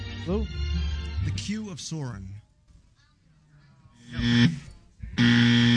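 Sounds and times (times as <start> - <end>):
speech: 0.2 - 0.6, 1.2 - 2.4
game show buzzer: 4.1 - 5.7.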